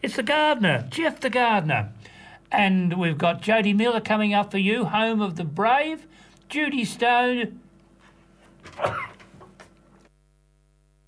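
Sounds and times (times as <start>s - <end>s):
speech: 0.1s - 7.6s, 8.7s - 9.1s
person sneezing: 8.7s - 9.4s.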